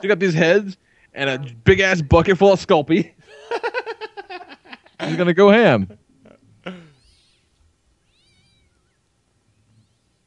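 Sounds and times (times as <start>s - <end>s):
speech: 0.0s - 3.7s, 5.1s - 6.0s
quiet slightly noisy background: 0.0s - 10.2s
laughter: 3.3s - 6.0s
canned alley cat meowing sound effect: 7.0s - 9.0s
thinner wavering alley cat cries: 7.0s - 10.2s.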